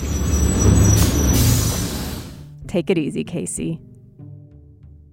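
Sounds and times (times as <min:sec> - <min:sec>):
city bus air brakes hissing: 0:00.0 - 0:02.5
city bus rumbling as it comes to a stop: 0:00.0 - 0:03.1
speech: 0:02.7 - 0:03.9.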